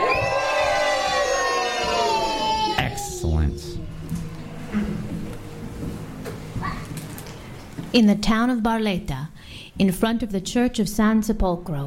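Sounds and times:
crowd screaming and cheering joyfully: 0.0s - 4.0s
speech: 7.9s - 11.8s.

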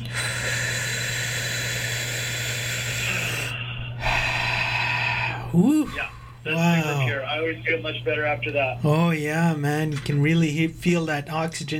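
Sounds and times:
deep breathing during a guided breathing exercise: 0.0s - 6.5s
low steady hum: 0.0s - 11.7s
speech: 5.5s - 11.7s.

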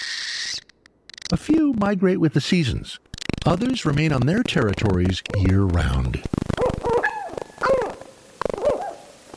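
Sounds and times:
speech: 1.3s - 6.4s
northern hawk owl calling: 6.6s - 9.2s.

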